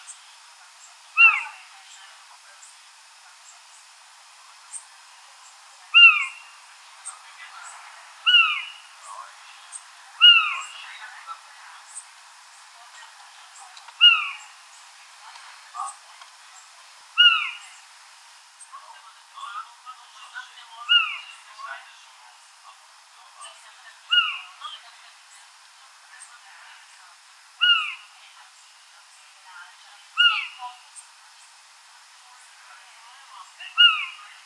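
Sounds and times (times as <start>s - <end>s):
Otus scops calling: 0.9s - 1.8s, 5.9s - 11.1s, 13.5s - 14.6s, 16.6s - 17.9s, 19.4s - 21.8s, 23.4s - 24.9s, 27.5s - 28.2s, 30.0s - 31.1s, 33.6s - 34.4s.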